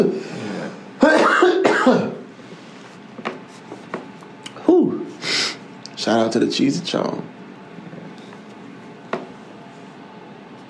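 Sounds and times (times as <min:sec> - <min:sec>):
speech: 0:00.0 - 0:00.4, 0:06.0 - 0:07.4
smoker's harsh raspy coughing: 0:01.0 - 0:02.2
throat clearing: 0:01.0 - 0:02.2.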